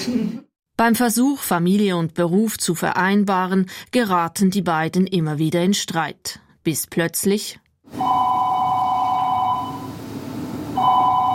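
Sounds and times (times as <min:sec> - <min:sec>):
speech: 0:00.0 - 0:08.3
electronic telephone ringing in a stage production: 0:08.0 - 0:10.0, 0:10.8 - 0:11.3.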